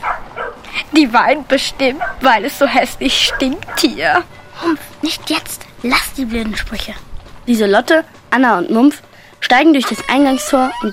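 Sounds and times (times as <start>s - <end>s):
dog barking: 0.0s - 0.6s, 2.0s - 2.3s, 3.2s - 4.0s
speech: 1.0s - 10.9s.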